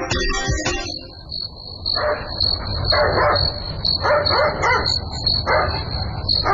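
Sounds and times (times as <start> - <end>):
crickets chirping: 0.2 - 6.5
dog barking at night: 1.9 - 6.5.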